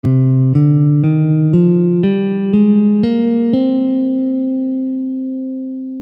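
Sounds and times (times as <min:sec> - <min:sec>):
guitar playing Aeolian C scale: 0:00.0 - 0:06.0.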